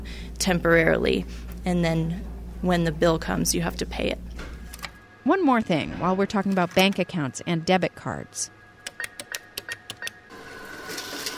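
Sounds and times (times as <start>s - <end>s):
speech: 0.4s - 4.5s, 5.2s - 8.6s
ATM mechanical clicks while dispensing cash: 8.8s - 10.2s.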